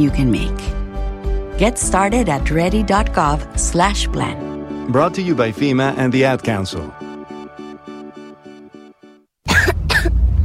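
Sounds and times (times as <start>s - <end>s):
speech: 0.0s - 0.8s, 1.6s - 7.0s
child coughing: 9.5s - 10.2s.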